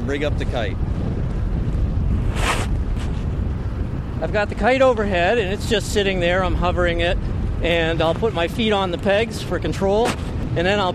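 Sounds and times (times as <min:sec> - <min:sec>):
wind rumbling against the microphone over open water: 0:00.0 - 0:10.9
speech: 0:00.1 - 0:01.1, 0:04.2 - 0:10.9
hissing gust of wind: 0:02.1 - 0:03.3.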